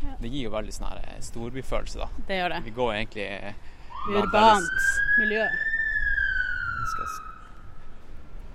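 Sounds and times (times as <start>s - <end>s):
low rumble of street noise: 0.0s - 8.5s
speech: 0.2s - 5.7s
emergency vehicle siren wailing as it passes outside: 3.9s - 7.8s.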